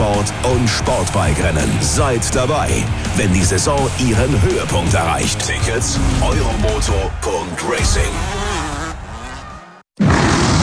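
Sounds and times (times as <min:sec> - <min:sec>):
speech: 0:00.2 - 0:08.4
lion roaring: 0:10.0 - 0:10.6.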